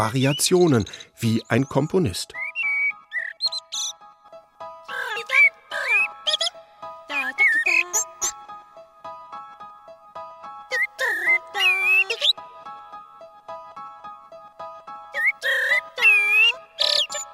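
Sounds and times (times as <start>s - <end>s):
speech: 0.0s - 2.4s
common blackbird singing fluting warbling phrases: 0.0s - 4.0s, 4.9s - 8.4s, 10.7s - 12.4s, 15.2s - 17.3s.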